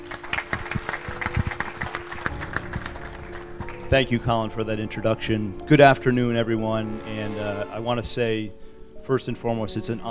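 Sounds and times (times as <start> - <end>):
room full of people applauding: 0.0 - 4.3
speech: 3.9 - 10.1.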